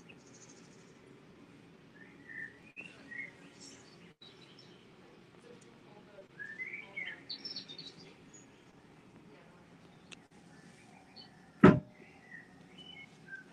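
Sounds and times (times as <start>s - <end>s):
several birds chirping and tweeting: 0.0s - 13.5s
steady murmur of noise: 2.7s - 13.5s.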